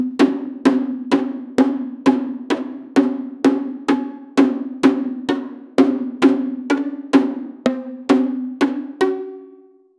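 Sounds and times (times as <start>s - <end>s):
bombo drum rhythm: 0.0s - 9.3s.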